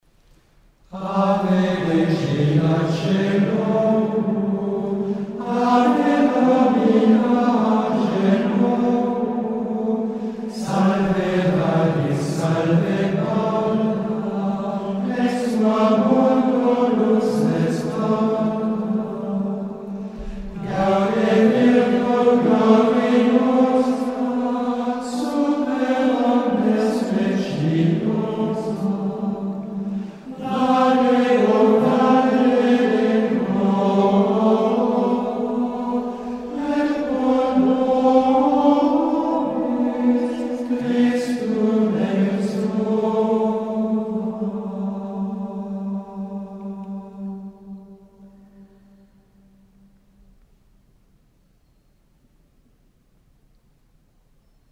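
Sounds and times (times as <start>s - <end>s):
choir chanting an antiphon: 0.9s - 49.8s.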